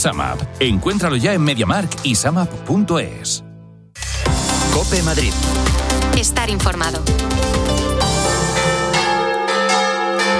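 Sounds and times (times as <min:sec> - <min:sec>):
speech: 0:00.0 - 0:03.5, 0:04.7 - 0:07.6
church bells pealing: 0:07.7 - 0:10.3.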